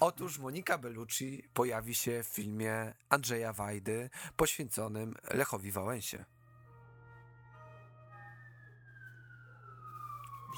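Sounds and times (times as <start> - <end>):
speech: 0.2 - 6.4
ambulance siren passing outside: 6.4 - 10.5.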